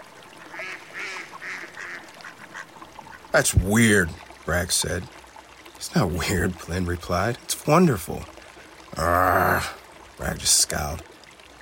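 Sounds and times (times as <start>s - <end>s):
little ducks quacking: 0.4s - 3.4s
speech: 3.3s - 5.2s, 5.8s - 11.2s.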